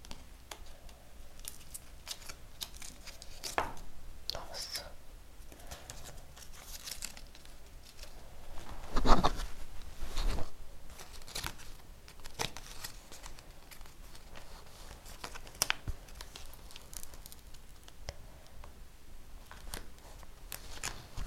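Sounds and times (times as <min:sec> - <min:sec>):
paper rustling: 0:00.0 - 0:03.8, 0:05.5 - 0:18.0, 0:19.4 - 0:21.2
sticker packets tearing open: 0:01.4 - 0:03.6, 0:05.9 - 0:08.1, 0:11.0 - 0:17.9.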